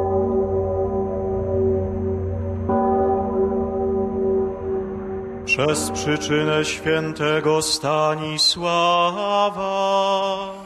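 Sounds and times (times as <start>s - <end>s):
huge deep cathedral bell tolling: 0.0s - 8.4s
speech: 5.6s - 10.6s.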